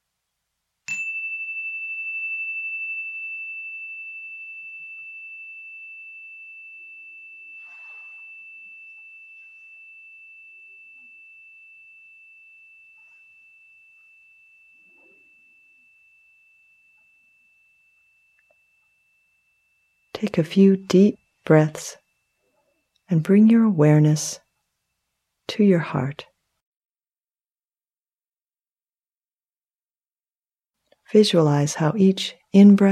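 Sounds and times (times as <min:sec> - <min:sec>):
meditation chime struck in a loving-kindness meditation: 0:00.9 - 0:23.0
speech: 0:20.2 - 0:22.0, 0:23.1 - 0:24.4, 0:25.5 - 0:26.3, 0:31.1 - 0:32.8.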